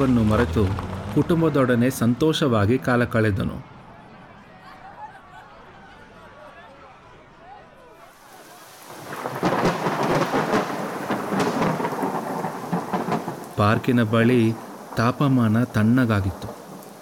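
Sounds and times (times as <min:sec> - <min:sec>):
heavy rain downpour near a park on a cold day: 0:00.0 - 0:02.1, 0:08.0 - 0:16.9
speech: 0:00.0 - 0:03.7, 0:13.6 - 0:16.5
laughter: 0:04.5 - 0:07.5.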